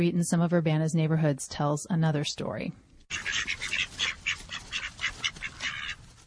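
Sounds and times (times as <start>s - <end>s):
speech: 0.0s - 3.8s
small flock of bantam ducks quacking: 3.1s - 6.2s.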